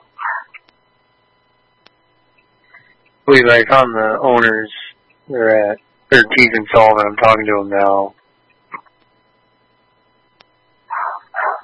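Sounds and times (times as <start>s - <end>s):
dog yipping in vehicle back seat: 0.2s - 0.6s, 10.9s - 11.6s
faint click: 1.8s - 2.0s, 10.4s - 10.6s
speech: 3.3s - 8.8s
dog barking in vehicle back seat: 10.9s - 11.6s.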